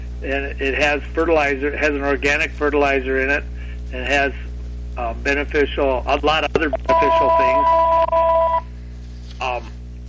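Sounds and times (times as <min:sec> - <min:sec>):
speech: 0:00.2 - 0:07.8
electronic telephone ring tone: 0:06.6 - 0:08.7.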